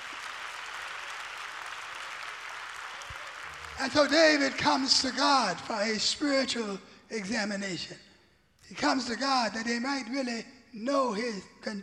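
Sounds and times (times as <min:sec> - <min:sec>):
large audience clapping hands in praise: 0:00.0 - 0:05.9
speech: 0:03.8 - 0:08.1, 0:08.7 - 0:11.8.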